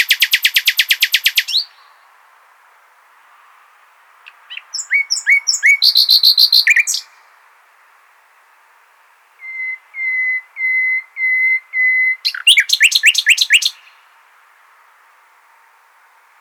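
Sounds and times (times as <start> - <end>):
common nightingale Luscinia megarhynchos singing: 0.0 - 2.2, 4.2 - 7.4, 9.4 - 14.1.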